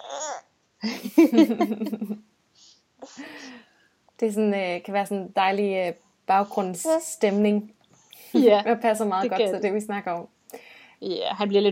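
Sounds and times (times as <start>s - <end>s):
baby babbling and cooing: 0.0s - 0.5s, 6.5s - 7.4s
speech: 0.1s - 3.5s, 4.2s - 11.7s.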